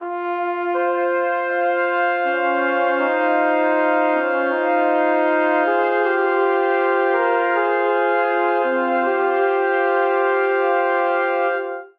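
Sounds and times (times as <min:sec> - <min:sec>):
brass quartet phrase in F minor at 80 bpm: 0:00.0 - 0:11.9.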